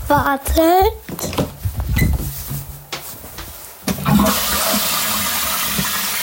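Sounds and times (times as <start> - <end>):
speech: 0.1 - 1.3
toilet flushing: 3.9 - 6.2.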